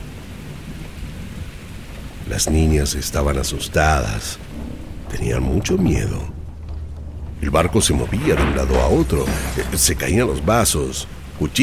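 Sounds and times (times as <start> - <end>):
deep rolling thunder in Greece: 0.0 - 11.6
heavy rain in a thunderstorm in Greece: 0.0 - 11.6
speech: 2.3 - 6.4, 7.4 - 11.6.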